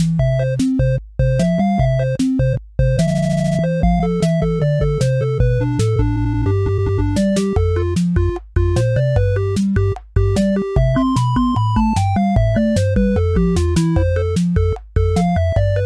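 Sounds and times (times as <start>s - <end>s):
8-bit ambience: 0.2s - 15.8s.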